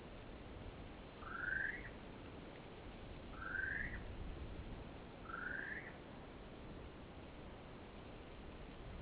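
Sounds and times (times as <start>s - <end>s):
steady low background hiss: 0.0s - 9.0s
great spotted kiwi rising whistled calls in duet: 1.2s - 2.0s, 3.3s - 4.0s, 5.2s - 6.0s.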